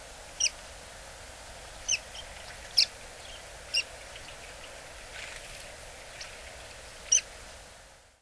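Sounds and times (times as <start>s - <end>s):
steady low background hiss: 0.0s - 8.2s
buff-bellied pipit calls in Hyogo Prefecture, Japan: 0.4s - 0.6s, 1.8s - 4.7s, 7.0s - 7.3s.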